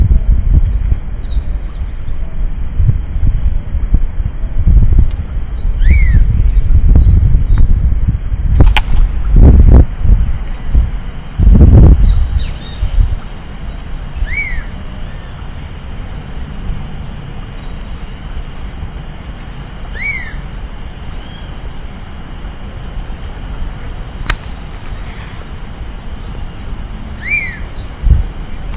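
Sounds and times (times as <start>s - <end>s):
Elaenia spectabilis in Otamendi: 0.1s - 3.5s, 4.3s - 22.0s, 23.0s - 28.7s.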